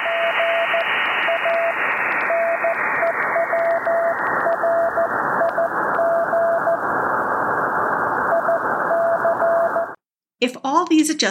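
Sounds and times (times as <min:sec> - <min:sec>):
Morse code CW signal beeping on a ham radio receiver: 0:00.0 - 0:06.8, 0:08.3 - 0:10.0
dense hiss of noisy interference on a ham radio receiver: 0:00.0 - 0:10.0
speech: 0:10.9 - 0:11.2.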